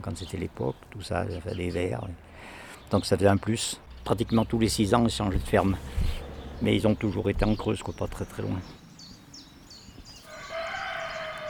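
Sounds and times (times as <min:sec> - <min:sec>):
speech: 0:00.0 - 0:08.8
steady noise: 0:00.0 - 0:11.4
rooster crowing: 0:10.2 - 0:11.4.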